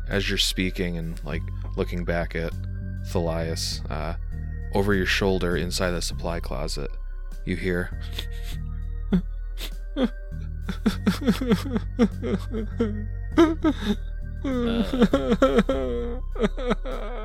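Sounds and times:
speech: 0:00.1 - 0:17.2
person imitating quiet sobbing: 0:09.1 - 0:17.2.

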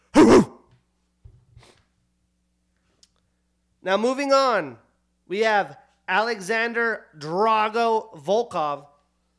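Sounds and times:
person coughing: 0:00.0 - 0:00.6
speech: 0:03.8 - 0:08.9.

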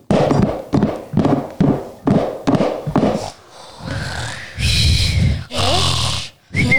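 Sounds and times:
rhythmic thumps: 0:00.0 - 0:06.7
loud snoring with wheezy whistle: 0:03.0 - 0:06.7.

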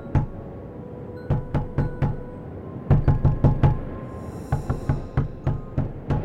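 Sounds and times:
sharp knocks on window glass: 0:01.3 - 0:02.3, 0:02.9 - 0:03.8, 0:04.6 - 0:06.2.

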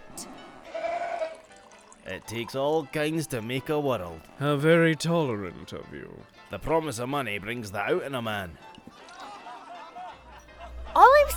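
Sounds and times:
goat bleating: 0:00.7 - 0:01.4
speech: 0:02.1 - 0:08.8
laughter: 0:08.9 - 0:11.0.

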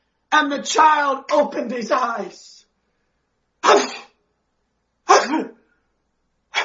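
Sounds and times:
speech: 0:00.3 - 0:02.6
preacher imitating sneezes: 0:03.6 - 0:04.2, 0:05.1 - 0:05.6.

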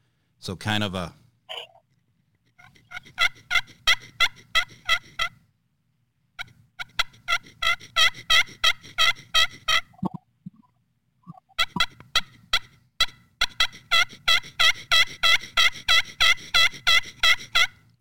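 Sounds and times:
speech: 0:00.4 - 0:01.2
turkey call imitating hen yelps: 0:02.6 - 0:05.4, 0:06.4 - 0:10.2, 0:11.3 - 0:17.8.

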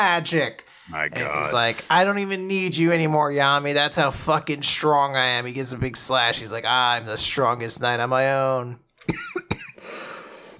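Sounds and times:
speech: 0:00.0 - 0:09.3
character coughing as he dies: 0:09.0 - 0:09.9.

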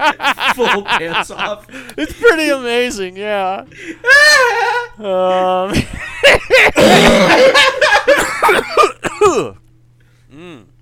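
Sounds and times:
people laughing: 0:00.0 - 0:02.6, 0:03.8 - 0:08.9
speech: 0:00.0 - 0:07.8
harsh coughing after laughter: 0:06.6 - 0:09.6.

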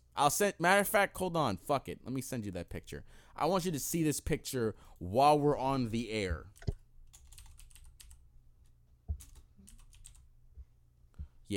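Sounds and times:
low hum: 0:00.0 - 0:11.5
speech: 0:00.2 - 0:06.8
rapid forceful typing on a computer keyboard: 0:07.1 - 0:08.2, 0:09.1 - 0:10.2.

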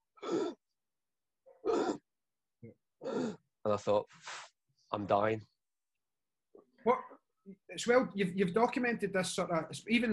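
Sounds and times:
voice imitating laboured rasping gasping breaths: 0:00.0 - 0:00.7, 0:03.0 - 0:03.5
speech: 0:02.6 - 0:05.5, 0:06.8 - 0:10.1.

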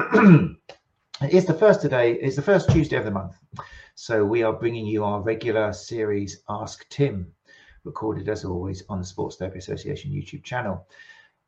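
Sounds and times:
rough cough or throat-clear: 0:00.0 - 0:00.6
speech: 0:00.1 - 0:00.6, 0:01.2 - 0:11.2.

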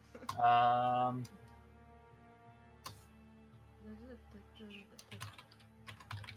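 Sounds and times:
typing on a computer keyboard: 0:05.0 - 0:06.3.

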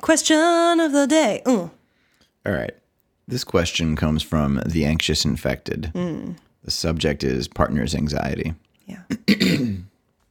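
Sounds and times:
speech: 0:00.1 - 0:01.8, 0:02.4 - 0:09.9
throat clearing: 0:09.1 - 0:10.0.

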